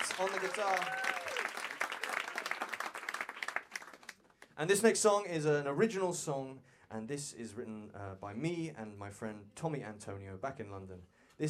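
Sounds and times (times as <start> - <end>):
audience applause for a four-piece band: 0.0 - 4.4
speech: 0.2 - 1.8, 4.6 - 11.4
faint whistle or cheer: 0.2 - 2.5.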